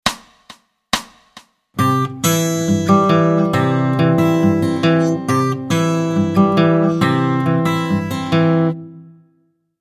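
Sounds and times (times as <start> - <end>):
Travis picking fingerpicked guitar: 1.8 - 9.5.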